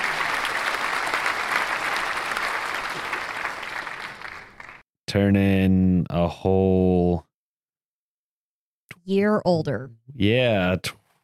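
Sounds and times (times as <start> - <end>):
group of people applauding: 0.0 - 4.8
speech: 5.1 - 7.3, 9.1 - 11.0.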